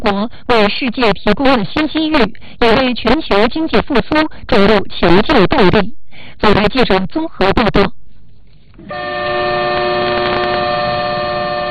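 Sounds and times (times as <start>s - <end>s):
speech: 0.0s - 8.0s, 8.8s - 9.9s
freight train horn blast at Yiwu West railway station in Zhejiang China: 8.8s - 11.6s.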